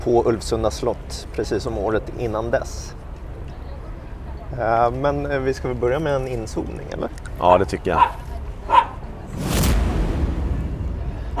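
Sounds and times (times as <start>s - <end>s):
speech: 0.0s - 3.0s, 4.5s - 8.3s
dog barking: 8.0s - 9.0s
low broad rumbling noise: 9.1s - 11.3s.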